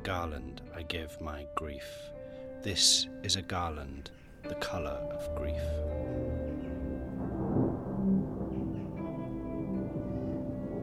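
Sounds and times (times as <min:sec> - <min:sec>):
speech: 0:00.0 - 0:06.4
rolling thunder: 0:06.0 - 0:10.8.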